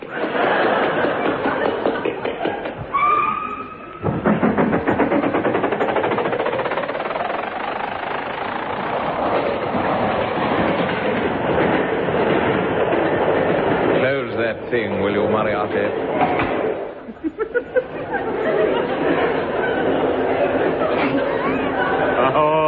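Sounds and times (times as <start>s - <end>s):
laughter: 0.0s - 2.9s, 17.0s - 22.6s
train rolling along the rails with clickety-clack: 0.0s - 3.0s, 3.9s - 22.6s
rattling train carriages: 0.0s - 22.6s
rising whistle-like tone: 2.9s - 4.0s.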